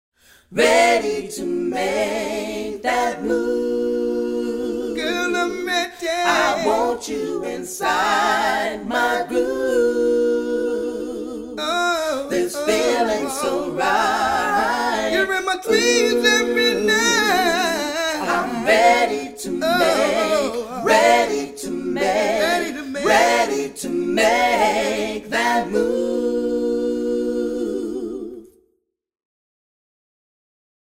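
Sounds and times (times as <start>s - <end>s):
vocal group in a room: 0.4s - 28.6s.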